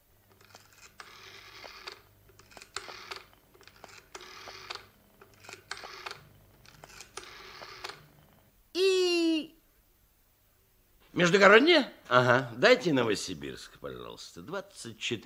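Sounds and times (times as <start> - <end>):
rotary phone dial whirring while dialing a telephone number: 0.2 - 8.5
speech: 11.2 - 15.2.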